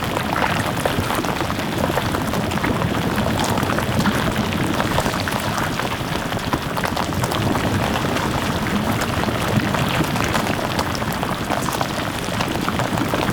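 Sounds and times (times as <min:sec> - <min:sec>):
coolant flowing: 0:00.0 - 0:13.3.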